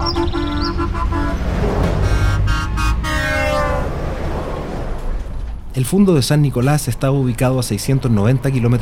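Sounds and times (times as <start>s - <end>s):
deep truck air horns blaring: 0.0s - 4.2s
caravan of trucks bearing banners rumbling past: 0.0s - 8.7s
heavy truck engine noise: 0.0s - 8.7s
speech: 5.8s - 8.7s.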